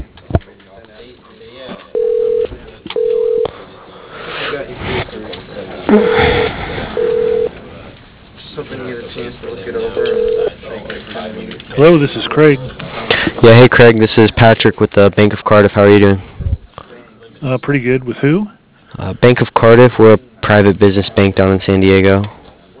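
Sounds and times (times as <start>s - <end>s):
noisy phone-line background: 2.0s - 3.5s, 6.9s - 7.5s, 9.9s - 10.6s
telephone keypad tones dialing an extension on an automated phone system: 2.0s - 3.5s, 7.0s - 7.5s, 10.0s - 10.5s
speech: 5.9s - 6.2s, 11.8s - 12.8s, 13.4s - 16.3s, 17.4s - 22.4s.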